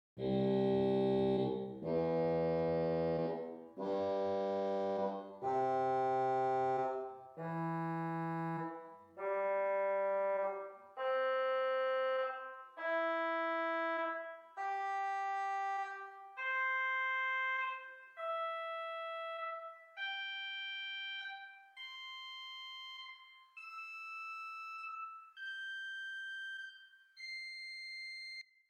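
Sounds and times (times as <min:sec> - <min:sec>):
organ swell oboe stop arpeggio: 0:00.2 - 0:27.4.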